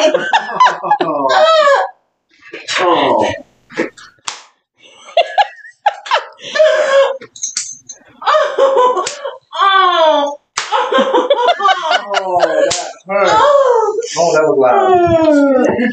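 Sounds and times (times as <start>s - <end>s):
laughter: 0.0s - 1.9s, 4.8s - 7.4s, 8.2s - 15.9s
hand slaps on bare skin: 4.2s - 4.6s, 10.6s - 10.8s.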